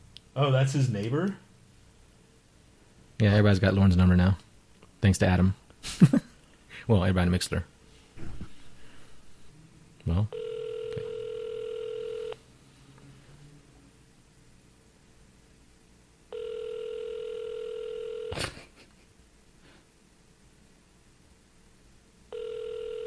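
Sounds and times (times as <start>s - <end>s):
speech: 0.4s - 1.4s, 3.2s - 4.4s, 5.0s - 6.3s, 6.9s - 8.3s, 10.1s - 10.4s
electronic phone ringback tones: 10.3s - 12.4s, 16.3s - 18.4s, 22.3s - 23.0s.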